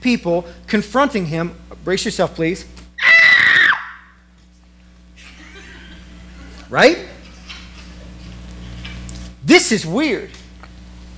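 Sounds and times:
speech: 0.0 - 2.8, 6.7 - 7.1, 9.5 - 10.4
person letting out an imitated high-pitched shriek: 3.0 - 4.1
laughter: 5.2 - 8.1.

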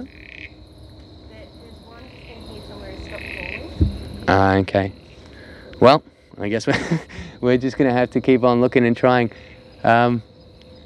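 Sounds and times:
frog croaking outdoors: 0.0 - 6.1, 7.2 - 10.8
high-pitched hum: 0.0 - 10.8
low thump: 3.7 - 4.4
speech: 4.3 - 5.0, 5.8 - 10.3
laughter: 6.5 - 7.6.

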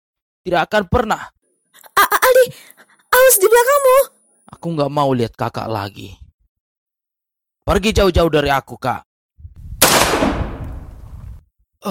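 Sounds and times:
speech: 0.4 - 1.4, 2.3 - 6.2, 7.7 - 9.1
low rumble: 9.4 - 11.4
gunshot: 9.8 - 11.2.

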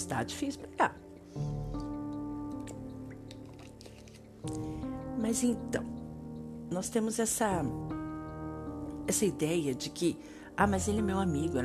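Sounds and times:
speech: 0.0 - 1.5, 4.4 - 6.0, 6.7 - 8.0, 9.1 - 11.6
small clicks and drips: 0.9 - 5.2
person sipping and swallowing water on a dry day in Brasília: 2.7 - 4.7.

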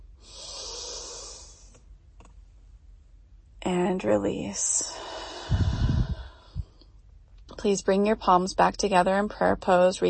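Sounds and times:
deep breathy inhalation during meditation: 0.2 - 1.8, 4.9 - 6.7
speech: 3.7 - 5.6, 7.6 - 10.0.

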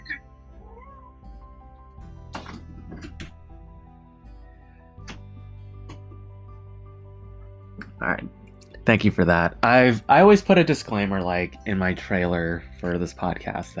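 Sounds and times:
cat meowing to be let outside: 0.0 - 1.4
sharp clunks and rustles: 2.3 - 3.4
speech: 8.0 - 13.7.

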